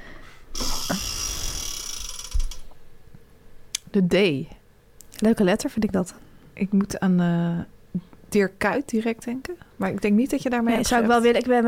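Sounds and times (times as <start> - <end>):
ratchet clicking of a spinning letter wheel in a word game: 0.6 - 2.7
speech: 3.9 - 4.6, 5.2 - 11.6.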